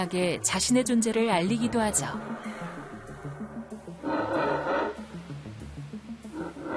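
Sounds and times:
speech: 0.0s - 3.0s
howler monkeys howling: 0.9s - 5.1s, 6.2s - 6.7s.

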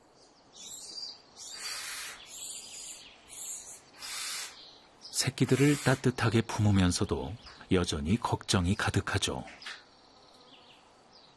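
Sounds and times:
barn owls giving harsh hissing screeches: 1.4s - 4.6s, 5.3s - 6.2s
speech: 5.2s - 9.8s.

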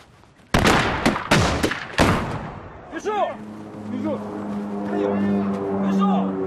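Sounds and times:
rifle shots during a shooting training drill: 0.5s - 2.6s
rolling echo of rifle shots: 0.5s - 2.8s
speech: 3.0s - 6.3s.

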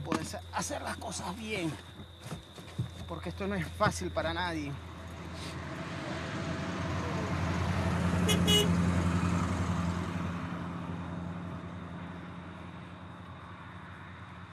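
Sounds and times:
34-year-old car engine rumbling: 0.0s - 14.5s
speech: 0.3s - 2.4s, 3.1s - 5.6s, 8.3s - 8.9s
34-year-old car horn toot: 8.2s - 8.8s.

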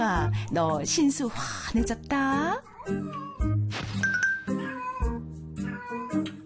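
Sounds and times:
speech: 0.2s - 3.6s
domestic cat meowing: 4.5s - 6.2s.

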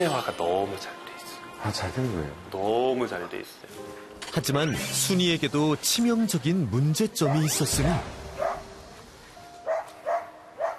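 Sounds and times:
speech: 0.0s - 8.4s
dog barking when left apart from its owner: 7.2s - 7.6s, 8.4s - 8.6s, 9.7s - 10.7s.

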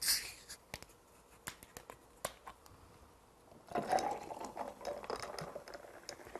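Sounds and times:
sparkling water poured into a glass with ice: 3.7s - 6.3s.

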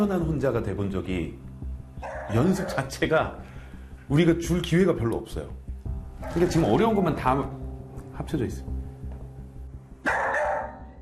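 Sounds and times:
speech: 0.0s - 1.5s, 2.3s - 3.5s, 4.1s - 5.6s, 6.2s - 7.6s, 8.2s - 8.7s
dog left alone at home barking excitedly: 2.0s - 2.8s, 10.1s - 10.8s.

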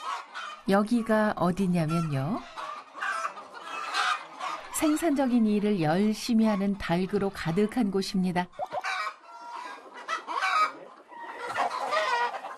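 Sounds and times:
hens clucking and squawking in a farm egg-laying house: 0.0s - 12.5s
speech: 0.2s - 2.5s, 4.8s - 8.7s.

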